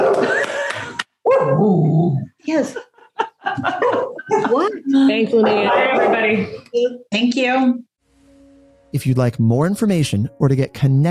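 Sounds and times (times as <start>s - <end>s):
dog barking: 0.0s - 0.4s, 1.2s - 1.6s, 3.8s - 4.5s, 5.4s - 6.5s
laughter: 0.0s - 1.1s, 2.8s - 4.9s
speech: 1.5s - 2.9s, 5.0s - 7.9s, 8.9s - 11.1s.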